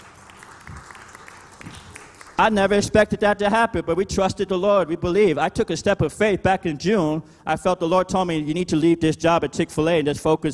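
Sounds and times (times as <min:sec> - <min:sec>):
crowd applauding: 0:00.0 - 0:02.8
speech: 0:02.4 - 0:10.5.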